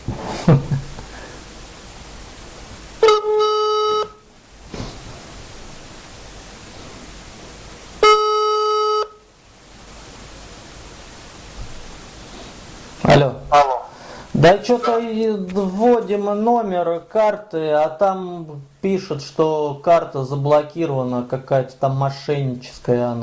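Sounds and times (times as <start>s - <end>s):
hiss: 0.0s - 23.2s
speech: 0.5s - 0.7s, 14.4s - 23.2s
phone beeping with an incoming call-back: 3.0s - 4.2s.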